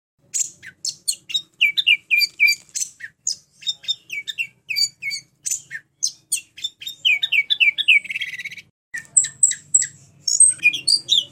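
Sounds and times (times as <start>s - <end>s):
orange-headed thrush singing high sharp whistled notes: 0.4s - 11.3s.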